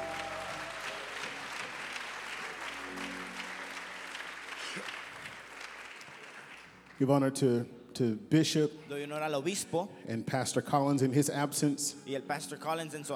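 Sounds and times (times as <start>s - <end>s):
audience applauding: 0.0s - 7.1s
speech: 7.0s - 13.1s.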